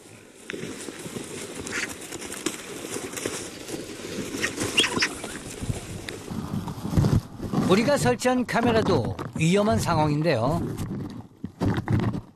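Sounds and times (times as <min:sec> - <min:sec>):
vultures scuffling at a feeding site: 0:00.2 - 0:12.3
speech: 0:00.5 - 0:01.1, 0:07.7 - 0:10.9
vultures flapping wings: 0:00.6 - 0:07.7
vultures squabbling with rough hissing calls over food: 0:01.6 - 0:02.0, 0:04.4 - 0:05.5.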